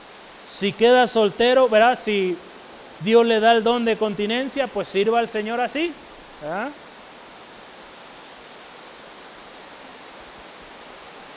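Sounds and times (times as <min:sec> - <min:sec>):
heavy rain: 0:00.0 - 0:11.3
speech: 0:00.5 - 0:06.8.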